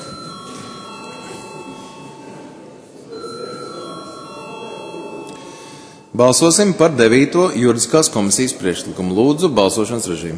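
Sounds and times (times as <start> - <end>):
electric bell ringing in a parliament chamber to call a vote: 0.0 - 6.1
speech: 6.2 - 10.3.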